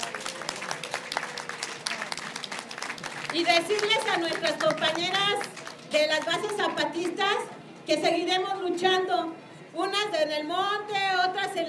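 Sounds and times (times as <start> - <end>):
crowd applauding: 0.0 - 6.6
speech: 3.3 - 11.6.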